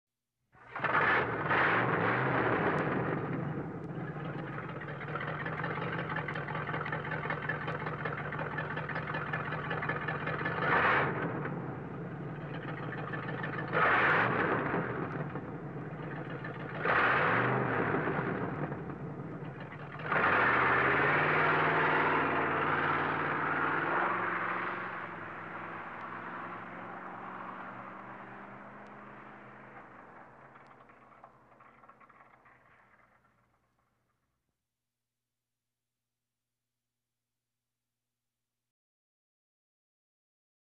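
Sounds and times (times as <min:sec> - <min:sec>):
very old car: 0:00.6 - 0:34.4.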